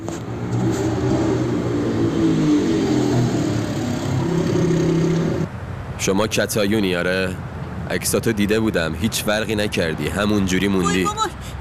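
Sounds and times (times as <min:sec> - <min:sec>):
motorcycle engine revving as it approaches: 0:00.0 - 0:05.5
speech: 0:06.0 - 0:11.5.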